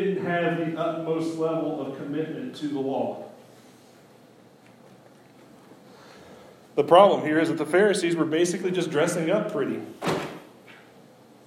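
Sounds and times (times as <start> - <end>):
speech: 0.3 - 3.3, 6.8 - 10.2
door slamming shut: 10.0 - 10.5.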